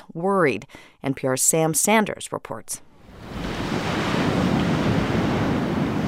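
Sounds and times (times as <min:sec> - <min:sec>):
speech: 0:00.2 - 0:03.5
Pacific Ocean waves crashing on sand: 0:03.0 - 0:06.0
wind buffeting the microphone: 0:03.1 - 0:06.0.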